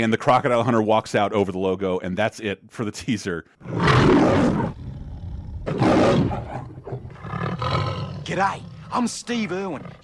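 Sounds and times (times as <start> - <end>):
speech: 0.0 - 4.8, 5.6 - 6.7, 8.2 - 10.0
African lion roaring in a film teaser trailer logo: 3.6 - 10.0.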